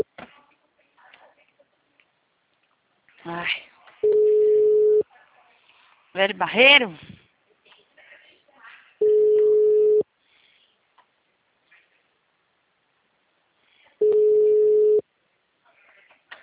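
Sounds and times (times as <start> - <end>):
faint scattered sounds: 0.0 - 16.4
speech: 3.2 - 3.7, 6.2 - 7.1
phone ringback tone during an outgoing call: 4.0 - 5.0, 9.0 - 10.0, 14.0 - 15.0.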